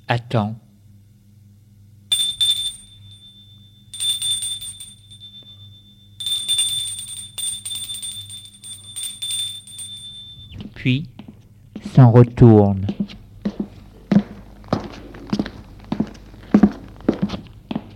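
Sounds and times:
low steady hum: 0.0s - 17.9s
speech: 0.1s - 0.6s, 10.8s - 11.1s, 12.0s - 12.9s
bell trilling: 2.1s - 10.7s.

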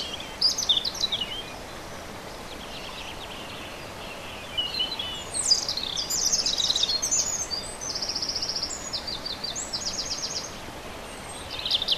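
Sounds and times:
European robin singing: 0.0s - 1.7s, 2.4s - 11.9s.

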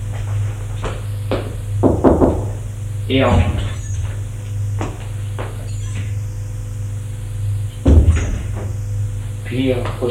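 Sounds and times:
low steady hum: 0.0s - 10.0s
man knocking on an office door: 1.8s - 2.6s
speech: 3.1s - 3.6s, 9.5s - 10.0s.

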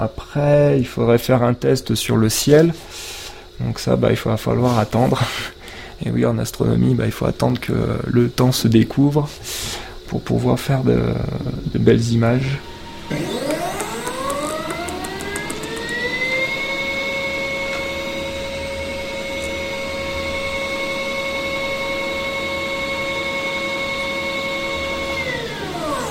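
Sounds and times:
speech: 0.0s - 13.3s
telescope mount motor slewing with electric whine: 10.9s - 26.1s.

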